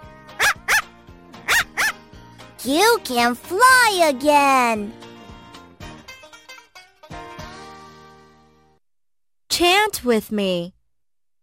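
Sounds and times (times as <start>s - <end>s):
dog barking: 0.4s - 2.0s
speech: 2.6s - 5.0s, 9.6s - 10.8s.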